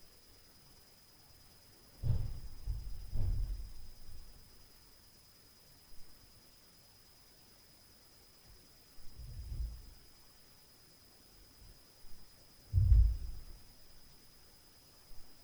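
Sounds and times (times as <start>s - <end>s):
boom from upstairs at night: 2.0s - 4.2s, 12.7s - 13.6s.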